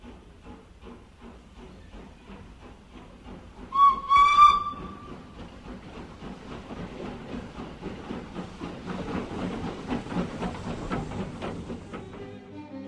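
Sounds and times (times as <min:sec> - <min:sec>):
hissing steam from a steam locomotive: 0:00.0 - 0:12.3
steam locomotive whistle: 0:03.7 - 0:05.1.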